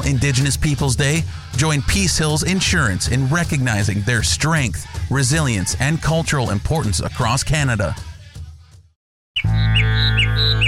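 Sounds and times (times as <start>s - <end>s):
speech: 0.0s - 8.1s
birds calling in springtime with short squawking chirps: 9.4s - 10.6s.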